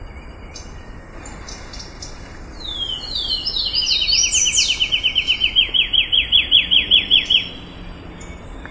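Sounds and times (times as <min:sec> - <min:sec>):
Riverbank warbler song: 0:00.0 - 0:08.7.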